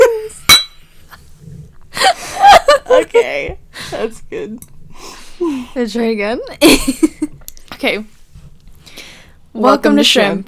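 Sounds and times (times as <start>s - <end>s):
glasses clinking together in a toast: 0.5s - 0.9s
speech: 3.2s - 4.8s, 5.4s - 7.2s, 7.8s - 8.2s, 9.6s - 10.4s.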